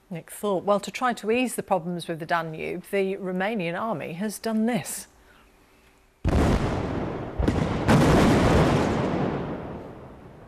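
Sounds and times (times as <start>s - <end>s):
speech: 0.1s - 5.1s
controlled explosions redirecting a river branch: 6.2s - 10.4s.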